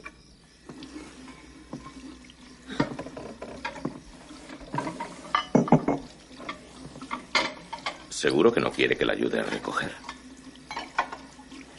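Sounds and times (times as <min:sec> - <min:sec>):
water running in a kitchen sink: 0:00.0 - 0:11.7
glass and crockery clinking: 0:02.6 - 0:04.0, 0:04.7 - 0:08.8, 0:09.9 - 0:11.3
speech: 0:08.2 - 0:10.1.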